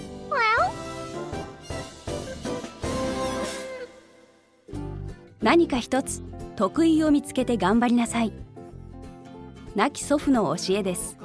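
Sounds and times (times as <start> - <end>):
cat meowing: 0.3 - 0.8
speech: 5.4 - 8.4, 9.8 - 11.2.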